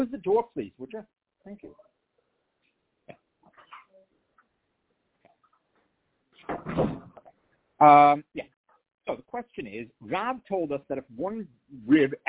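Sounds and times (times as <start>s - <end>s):
speech: 0.0s - 1.9s, 7.8s - 8.5s, 9.1s - 12.2s
door pushed shut with a rattling scraping thud: 6.5s - 7.2s.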